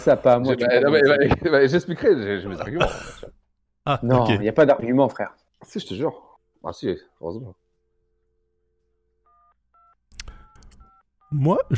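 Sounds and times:
speech: 0:00.0 - 0:07.6, 0:11.3 - 0:11.7
electronic phone keypad beeps: 0:09.2 - 0:11.4.

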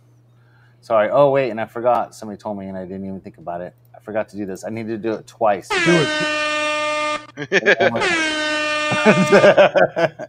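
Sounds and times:
speech: 0:00.8 - 0:06.4, 0:07.4 - 0:08.4, 0:09.0 - 0:10.2
brassy air horn sound effect blasts: 0:05.7 - 0:09.6
laughter: 0:07.4 - 0:08.1, 0:08.9 - 0:10.2.

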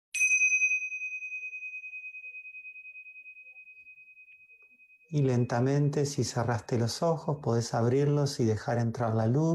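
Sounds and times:
meditation bell struck during a guided meditation: 0:00.2 - 0:06.6
speech: 0:05.1 - 0:09.5.

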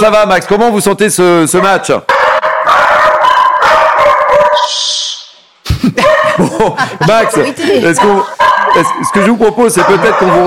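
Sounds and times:
speech: 0:00.0 - 0:02.2, 0:04.7 - 0:05.1, 0:06.4 - 0:10.4
several dogs barking and yelping excitedly: 0:01.5 - 0:04.7, 0:06.0 - 0:10.4
laughter: 0:05.7 - 0:08.5.

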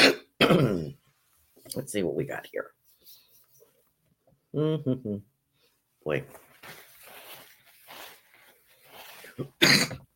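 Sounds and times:
person coughing: 0:00.0 - 0:01.0, 0:09.4 - 0:10.1
speech: 0:01.8 - 0:02.8, 0:04.5 - 0:05.3, 0:06.0 - 0:06.8, 0:09.4 - 0:09.9
faint breathy rustling: 0:05.5 - 0:09.6.

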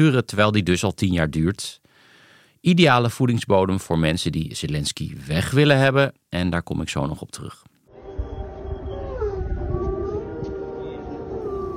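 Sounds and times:
speech: 0:00.0 - 0:01.8, 0:02.6 - 0:07.7
air-raid siren droning: 0:07.9 - 0:11.7
wolves howling: 0:08.0 - 0:11.7.

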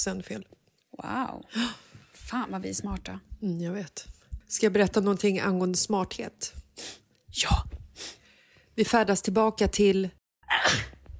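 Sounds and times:
speech: 0:00.0 - 0:08.2, 0:08.8 - 0:11.0
sharp loud sneeze: 0:10.5 - 0:11.0.

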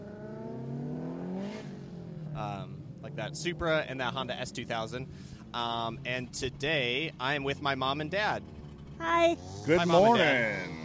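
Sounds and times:
sports car engine revving and driving away: 0:00.0 - 0:04.2, 0:09.3 - 0:10.8
speech: 0:02.4 - 0:10.8.

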